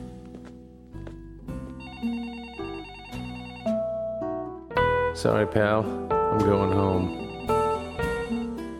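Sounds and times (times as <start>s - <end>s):
telephone ringing with a melodic electronic ringtone: 1.8s - 3.9s, 6.8s - 8.6s
speech: 5.2s - 7.2s.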